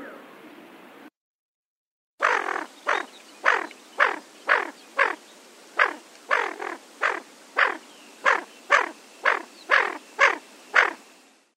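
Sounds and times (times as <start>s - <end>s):
Aythya marila calling: 2.2s - 5.2s, 5.8s - 11.0s.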